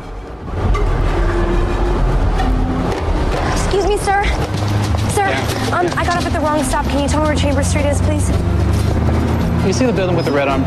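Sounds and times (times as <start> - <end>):
faint metallic squeals and clatter of a subway train: 0.0 - 10.6
subway train rumbling: 0.0 - 10.6
speech: 5.7 - 8.7, 9.6 - 10.6.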